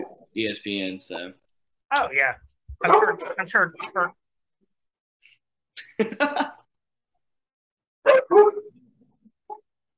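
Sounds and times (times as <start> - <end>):
speech: 0.4 - 4.2, 5.8 - 6.6
dog barking: 2.8 - 3.5, 8.0 - 8.7
dog yipping: 8.0 - 8.7.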